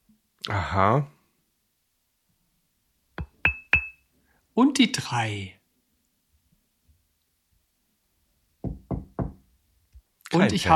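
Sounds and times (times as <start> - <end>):
speech: 0.5 - 1.2, 4.6 - 5.6, 10.3 - 10.7
knocking with a dull woody thud: 8.6 - 9.4.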